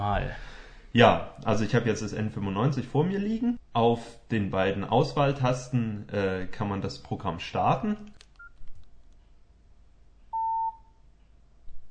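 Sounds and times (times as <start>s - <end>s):
speech: 0.0s - 8.2s
low noise: 0.0s - 11.8s
short start beep of phone app: 10.3s - 10.9s.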